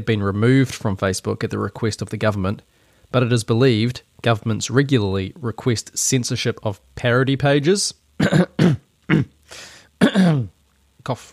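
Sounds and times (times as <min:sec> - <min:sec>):
speech: 0:00.0 - 0:11.3
person coughing: 0:08.2 - 0:09.4, 0:10.0 - 0:10.6
throat clearing: 0:08.2 - 0:09.4, 0:10.0 - 0:10.6.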